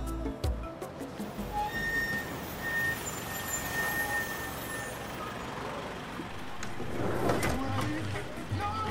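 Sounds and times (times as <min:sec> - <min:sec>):
bus engine pulling in to a bus stop: 0:00.2 - 0:08.9
bus air brakes hissing: 0:01.4 - 0:05.4.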